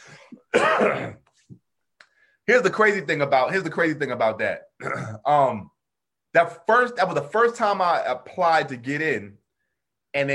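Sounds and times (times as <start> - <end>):
harsh cough: 0.0 - 1.4, 4.8 - 5.3
rough drawn-out throat clearing: 0.2 - 1.5, 4.8 - 5.3
speech: 0.5 - 1.2, 2.5 - 5.7, 6.3 - 9.4, 10.1 - 10.3.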